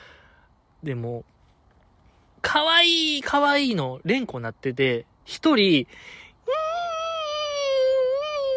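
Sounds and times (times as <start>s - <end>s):
speech: 0.8s - 1.4s, 2.4s - 6.2s
person imitating a whimpering puppy: 6.4s - 8.5s.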